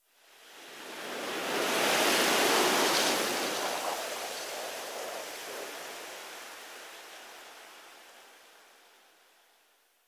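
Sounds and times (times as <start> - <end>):
wind whistling through leaves: 0.2 - 9.2.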